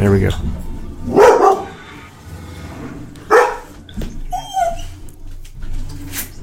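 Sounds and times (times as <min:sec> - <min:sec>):
dog barking: 0:01.1 - 0:01.8, 0:03.3 - 0:03.8
dog whimpering and yelping: 0:04.2 - 0:05.1.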